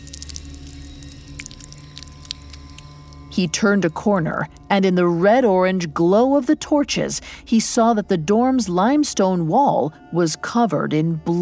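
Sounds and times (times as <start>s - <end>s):
irregular water drips: 0.0s - 3.4s
steady low rumbling hum: 0.0s - 9.6s
speech: 3.4s - 11.4s.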